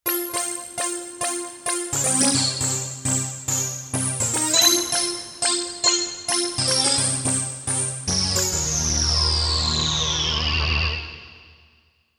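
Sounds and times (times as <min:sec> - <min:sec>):
Kawai K5000S synthesizer fifth: 0:00.1 - 0:11.0.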